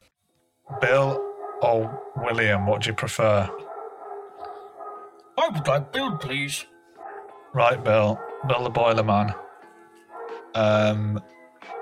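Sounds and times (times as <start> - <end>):
big dog barking a single loud deep bark: 0.7 - 2.7, 3.4 - 10.6
speech: 0.7 - 3.6, 5.5 - 6.7, 7.5 - 9.4, 10.6 - 11.4.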